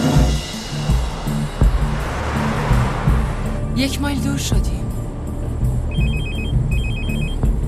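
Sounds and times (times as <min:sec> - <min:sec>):
steady low rumble: 0:00.2 - 0:05.9
speech: 0:03.8 - 0:04.8
phone electronic ringtone inside a bag: 0:05.9 - 0:07.5.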